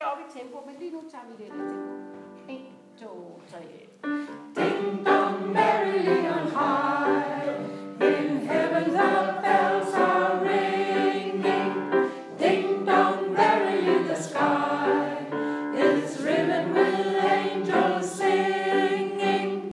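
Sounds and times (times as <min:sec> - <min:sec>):
soprano and tenor singing: 0:04.0 - 0:19.7.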